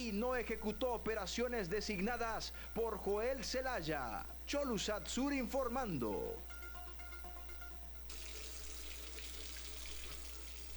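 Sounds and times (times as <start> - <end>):
speech: 0.0 - 6.6
faint tonal hum: 0.0 - 10.7
water gushing from a faucet into a sink: 8.1 - 10.7.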